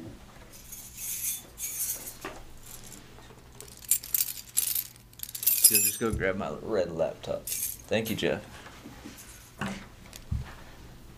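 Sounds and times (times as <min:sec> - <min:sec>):
bunch of keys jangling as they are handed over: 0:00.6 - 0:03.0, 0:03.6 - 0:06.1, 0:07.5 - 0:07.9
speech: 0:05.7 - 0:08.6.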